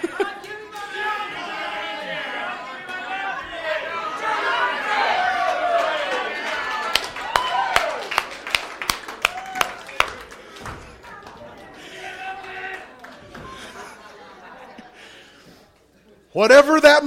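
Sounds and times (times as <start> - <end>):
laughter: 0.0 - 6.8, 10.0 - 16.3
large audience standing on chairs shouting a prayer together: 0.0 - 8.2, 11.6 - 13.1
sharp claps: 5.8 - 11.7
speech: 16.4 - 17.0.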